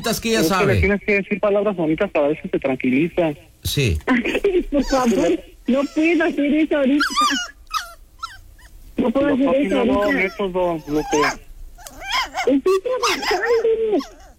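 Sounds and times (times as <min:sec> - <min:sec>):
speech: 0:00.0 - 0:07.6, 0:09.0 - 0:11.5, 0:12.4 - 0:14.2
dog whimpering and yipping: 0:07.0 - 0:08.8, 0:09.7 - 0:14.3.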